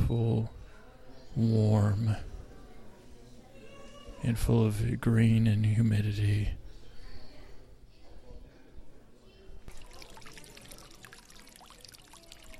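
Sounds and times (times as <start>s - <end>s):
faint voices murmuring: 0.0s - 5.0s, 6.1s - 12.5s
speech: 0.1s - 0.6s, 1.4s - 2.3s, 4.2s - 6.6s
fountain water splashing and trickling at the Conservatory of Flowers in Golden Gate Park: 9.7s - 12.5s.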